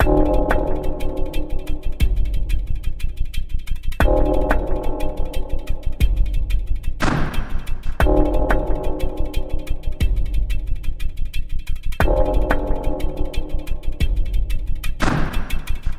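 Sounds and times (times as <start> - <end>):
120 rhythmic loop: 0.0 - 15.9.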